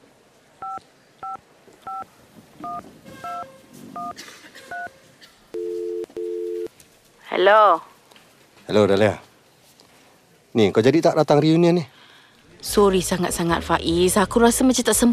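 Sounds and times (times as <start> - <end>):
telephone keypad dual-tone dialing beeps: 0.6 - 2.0, 2.6 - 3.4, 4.0 - 4.9, 5.6 - 6.7
phone ringing tones as the call connects: 0.6 - 4.9, 5.5 - 6.7
speech: 2.0 - 5.8, 7.3 - 7.9, 8.7 - 9.3, 10.6 - 11.9, 12.6 - 15.1.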